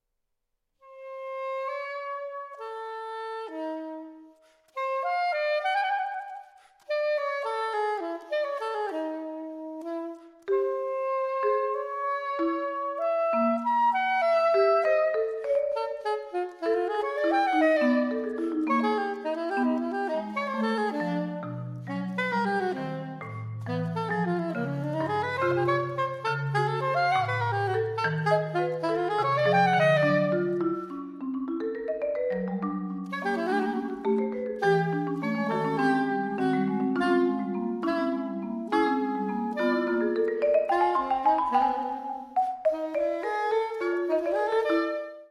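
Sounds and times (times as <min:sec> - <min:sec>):
saxophone playing a suite: 0:00.8 - 0:31.6, 0:32.2 - 0:45.3
percussion playing a suite: 0:14.7 - 0:21.3, 0:21.9 - 0:44.6.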